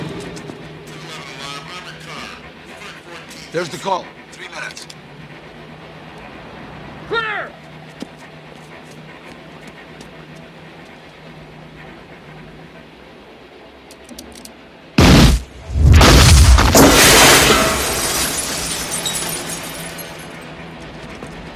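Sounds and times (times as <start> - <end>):
speech: 3.6 - 5.0
explosive blast: 15.0 - 18.1
falling glass and debris fragments clinking and rattling: 15.8 - 20.4
car windows shattering in an explosion: 15.9 - 20.4.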